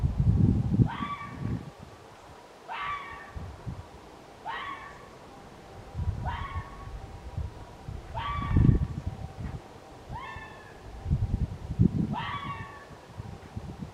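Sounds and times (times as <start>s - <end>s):
low rumbling background noise: 0.0s - 13.9s
red fox giving short rising yelping calls: 0.9s - 1.4s, 2.7s - 3.4s, 4.4s - 5.1s, 6.2s - 7.0s, 8.1s - 8.8s, 10.1s - 10.8s, 12.1s - 13.0s.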